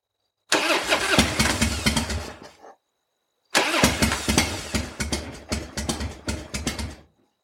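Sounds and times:
motorcycle engine cranking and failing to start: 0.5 - 2.4, 3.6 - 7.1.

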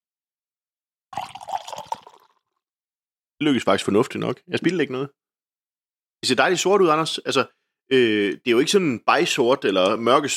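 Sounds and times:
dark drink pouring into a glass: 1.1 - 2.6
speech: 3.4 - 5.2, 6.2 - 10.3.

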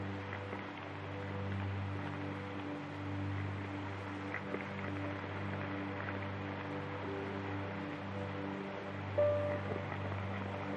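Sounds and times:
low atmospheric drone with sustained tones: 0.0 - 10.7
record player vinyl crackle: 0.0 - 10.7
repeating piano loops: 7.0 - 10.7.

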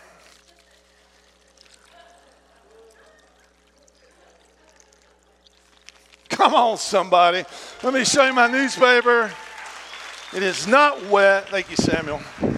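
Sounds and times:
water poured back into a container after a newspaper illusion: 0.0 - 7.8
low hum: 0.0 - 12.5
speech: 6.4 - 9.4, 10.3 - 12.4.

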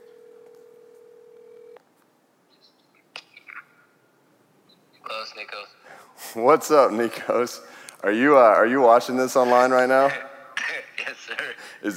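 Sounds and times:
steady electronic telephone tone: 0.0 - 1.8
speech: 5.2 - 10.3.

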